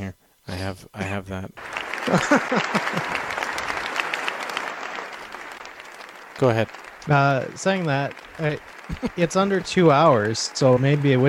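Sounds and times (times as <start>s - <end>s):
speech: 0.1s - 3.4s, 6.4s - 11.2s
laughter: 1.6s - 5.6s, 6.4s - 11.2s
crowd applauding: 1.6s - 11.2s.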